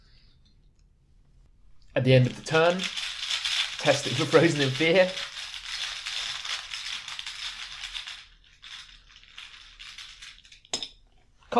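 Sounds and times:
speech: 2.0s - 3.0s, 3.8s - 5.3s
small hard game tokens shuffled in a bag: 2.2s - 10.7s.

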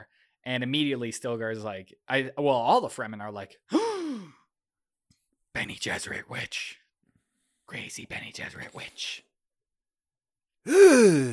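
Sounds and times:
speech: 0.0s - 4.4s, 5.6s - 6.8s, 7.7s - 9.3s, 10.6s - 11.3s
person imitating a gasp: 3.7s - 4.5s, 10.7s - 11.3s.

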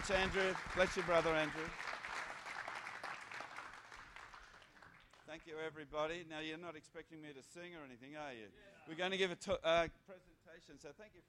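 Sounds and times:
speech: 0.0s - 1.8s, 5.3s - 11.2s
audience applause welcoming a speaker onto a stage: 0.0s - 5.2s.

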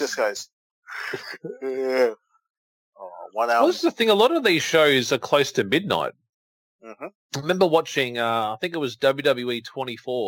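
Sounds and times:
speech: 0.1s - 2.3s, 3.0s - 6.2s, 6.8s - 10.2s
person imitating a big yawn: 1.0s - 2.2s.

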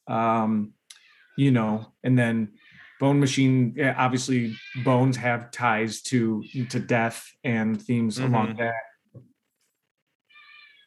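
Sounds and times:
speech: 0.1s - 0.8s, 1.4s - 9.3s
cat meowing: 4.4s - 5.1s, 6.4s - 7.0s.

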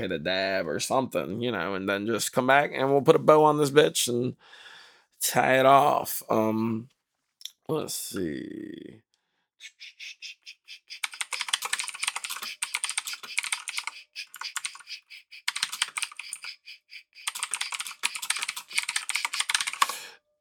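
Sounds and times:
speech: 0.0s - 7.0s, 7.7s - 9.0s
typing on a computer keyboard: 11.0s - 20.0s.

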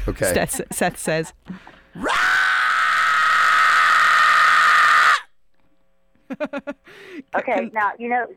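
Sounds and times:
speech: 0.1s - 2.3s, 6.3s - 8.3s
man screaming harsh and raspy with distortion: 2.0s - 5.3s
laughter: 6.2s - 7.7s.

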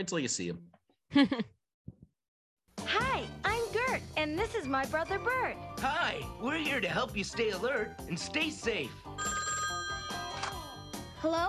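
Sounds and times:
speech: 0.0s - 1.6s, 4.0s - 9.3s, 11.2s - 11.4s
laughter: 1.1s - 1.5s
telephone bell ringing: 9.1s - 11.3s.

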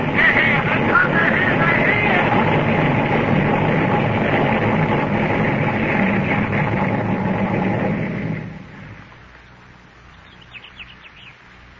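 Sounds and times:
flying saucer descending and landing with whirring roar: 0.0s - 9.2s.

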